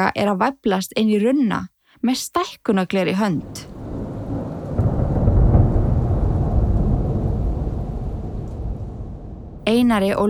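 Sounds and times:
speech: 0.0s - 3.8s, 9.7s - 10.2s
thunder rumbling through a storm with rain in Iceland: 3.5s - 10.2s.

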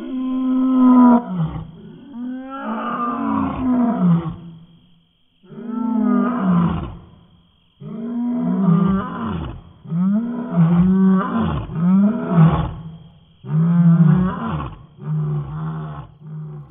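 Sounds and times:
lion roar blended with an elephant call: 0.0s - 4.5s, 5.5s - 7.2s, 7.8s - 16.7s.

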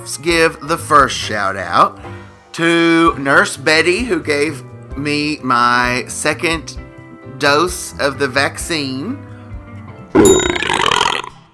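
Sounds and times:
speech: 0.1s - 6.8s, 7.4s - 9.2s, 10.1s - 10.7s
loud rumbling belch: 10.2s - 11.5s.

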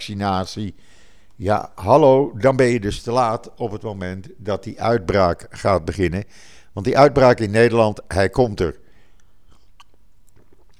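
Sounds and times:
speech: 0.0s - 8.8s
person sipping water with mouth clicks: 8.8s - 10.7s
small swallow of water: 8.9s - 10.7s.

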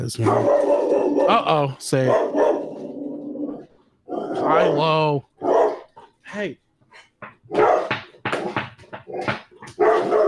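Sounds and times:
speech: 0.0s - 2.4s, 4.5s - 5.3s, 6.3s - 6.6s
dog barking: 0.2s - 3.0s, 4.1s - 4.8s, 5.4s - 6.1s, 7.5s - 10.2s.

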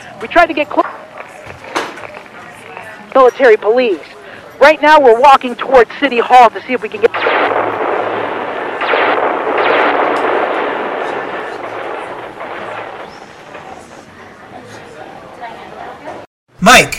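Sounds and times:
speech: 0.2s - 1.0s, 3.2s - 7.3s
loud rumbling explosions: 7.0s - 15.5s.

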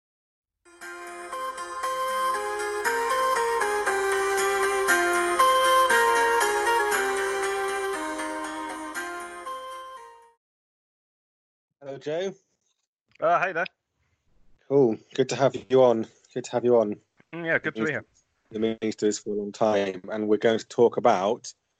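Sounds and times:
bright tinkling electronic phone ringtone melody: 0.8s - 10.3s
speech: 12.0s - 12.5s, 13.2s - 13.7s, 14.7s - 21.6s.

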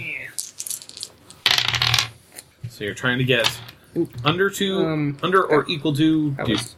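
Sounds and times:
dice rolling on a hard tabletop: 0.3s - 2.2s, 3.4s - 3.8s
speech: 2.8s - 6.7s.

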